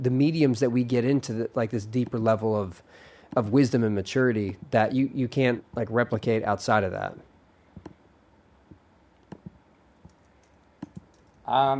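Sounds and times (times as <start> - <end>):
speech: 0.0 - 7.3, 11.5 - 11.7
faint hiss: 0.0 - 11.7
typing on a computer keyboard: 9.2 - 11.4.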